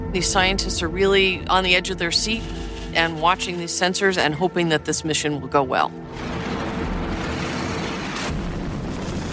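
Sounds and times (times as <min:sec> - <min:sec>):
speech: 0:00.1 - 0:06.4
rocket thrust from a 60-foot-tall Jupiter missile at launch: 0:06.1 - 0:09.3.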